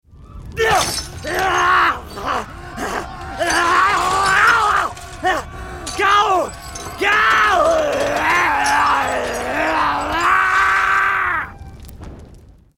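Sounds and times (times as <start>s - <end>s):
person turning into a zombie groaning: 1.2s - 6.4s, 7.0s - 11.4s.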